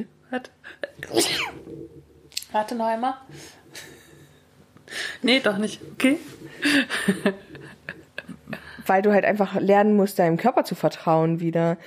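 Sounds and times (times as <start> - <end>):
speech: 0.0 - 3.6, 4.9 - 7.8, 8.8 - 11.8
short breathy held-back sneeze: 1.0 - 1.7
laughter: 6.5 - 8.9.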